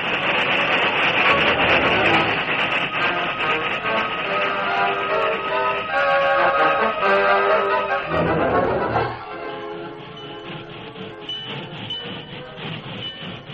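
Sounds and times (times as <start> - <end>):
dense clatter of train: 0.0 - 6.6, 8.2 - 13.5
train engine rumbling along the rails: 0.0 - 13.5
whistle-like tones: 1.2 - 13.5.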